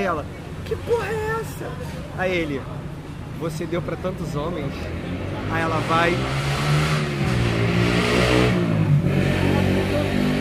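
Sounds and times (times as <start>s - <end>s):
speech: 0.0s - 6.8s
motorcycle engine revving: 4.9s - 10.4s.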